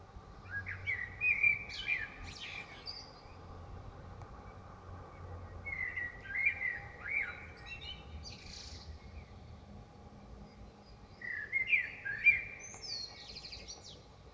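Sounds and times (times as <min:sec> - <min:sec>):
steady low background rumble: 0:00.0 - 0:14.3
common blackbird singing in Dresden: 0:00.4 - 0:03.5, 0:05.1 - 0:09.4, 0:10.5 - 0:14.1.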